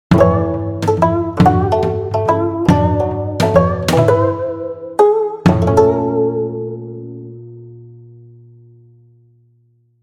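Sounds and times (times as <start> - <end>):
gacha game theme music: 0.1 - 6.6.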